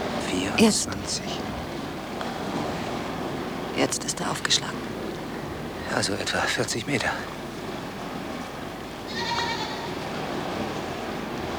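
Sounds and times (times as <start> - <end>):
steady broadband hiss: 0.0 - 11.5
speech: 0.5 - 1.6, 3.8 - 5.0, 5.9 - 7.4
goat bleating: 9.1 - 10.0.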